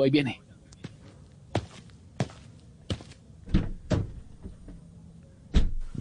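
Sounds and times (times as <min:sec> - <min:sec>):
speech: 0:00.0 - 0:00.5
clunks and clicks from car doors and handles: 0:03.5 - 0:04.8, 0:05.5 - 0:05.9.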